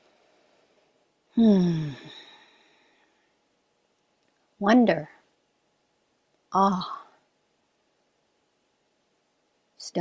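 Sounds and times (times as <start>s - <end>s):
speech: 1.4s - 2.2s, 4.6s - 5.1s, 6.5s - 7.0s
deep voiced exhale like a heavy sigh: 1.4s - 3.2s.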